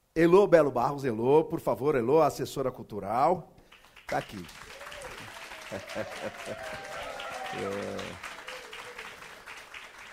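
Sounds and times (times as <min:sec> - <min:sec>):
speech: 0:00.2 - 0:04.8, 0:05.7 - 0:08.3
audience applause at a literary contest award event: 0:03.7 - 0:10.1
laughter: 0:04.8 - 0:09.5.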